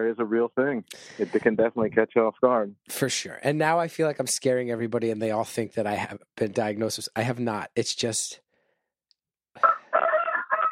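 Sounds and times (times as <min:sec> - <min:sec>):
speech: 0:00.0 - 0:08.4
rooster crowing: 0:09.6 - 0:10.7.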